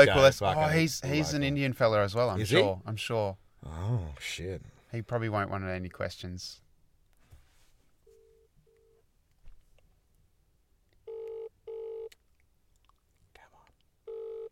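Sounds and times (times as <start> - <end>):
speech: 0.0 - 6.6
phone line ringing while waiting for an answer: 11.1 - 12.1, 14.1 - 14.5.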